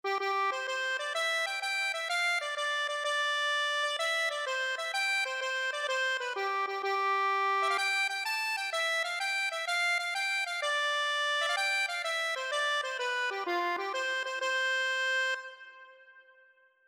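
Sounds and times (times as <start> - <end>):
accordion: 0.0 - 16.3.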